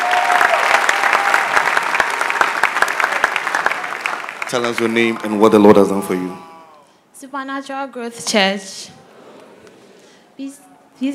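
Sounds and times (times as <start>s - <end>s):
crowd clapping: 0.0s - 6.3s
speech: 4.5s - 6.5s, 7.2s - 9.0s, 10.4s - 11.1s.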